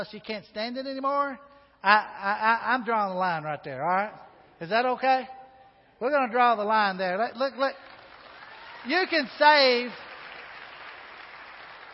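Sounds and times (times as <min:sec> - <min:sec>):
speech: 0:00.0 - 0:05.4, 0:06.0 - 0:07.9, 0:08.8 - 0:10.0
audience applause: 0:07.8 - 0:11.9.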